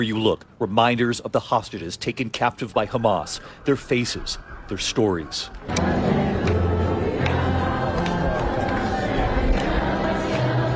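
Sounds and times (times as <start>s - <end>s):
speech: 0.0s - 6.2s
murmur of gathered people: 4.3s - 10.7s
large crowd singing softly together: 5.5s - 10.7s.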